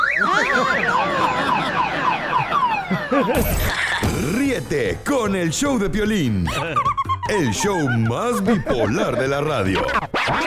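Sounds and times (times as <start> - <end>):
car alarm: 0.0 - 3.8
laughter: 0.0 - 4.6, 6.2 - 10.4
speech: 2.9 - 10.4.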